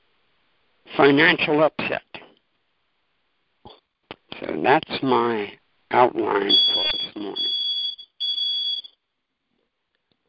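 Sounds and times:
speech: 1.0 - 2.1, 4.4 - 7.6
high-pitched electronic beeps from a timer alarm: 6.5 - 9.0.

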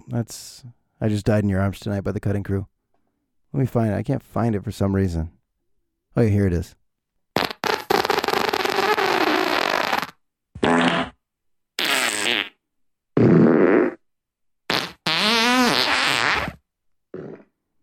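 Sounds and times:
speech: 0.1 - 2.7, 3.5 - 5.3, 6.1 - 6.8
fart sound effects played from streaming app: 7.3 - 11.2, 11.8 - 14.0, 14.7 - 17.5.

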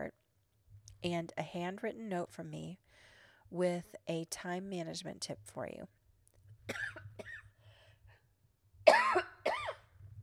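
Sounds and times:
speech: 1.0 - 2.8, 3.5 - 6.0, 6.7 - 7.3
person with a lingering cough coughing: 6.7 - 7.5, 8.9 - 9.9.

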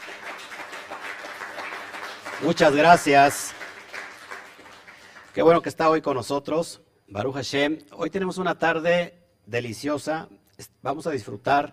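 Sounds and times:
crowd applauding: 0.0 - 5.6
speech: 2.4 - 3.6, 5.4 - 11.7.

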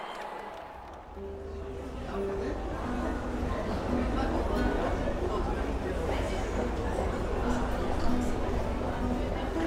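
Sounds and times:
dense steady crowd murmur: 0.0 - 9.6.

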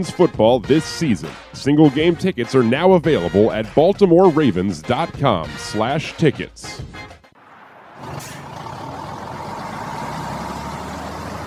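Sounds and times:
speech: 0.0 - 7.2
tractor-trailer truck engine starting and rumbling: 6.9 - 11.4
tractor-trailer truck air brake releasing: 8.0 - 8.6.

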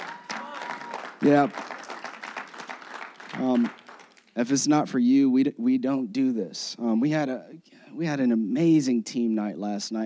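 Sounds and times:
person whooping: 0.0 - 1.2
crowd applauding: 0.0 - 4.4
speech: 1.2 - 1.8, 3.4 - 3.8, 4.4 - 10.0.

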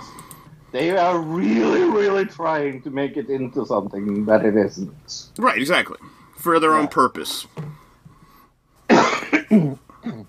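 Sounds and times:
speech: 0.7 - 7.7, 9.5 - 9.8
person coughing: 8.9 - 10.2.

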